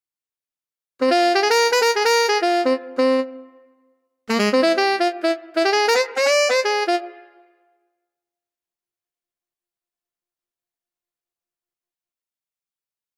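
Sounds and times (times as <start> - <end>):
tenor saxophone: 1.0 - 7.7.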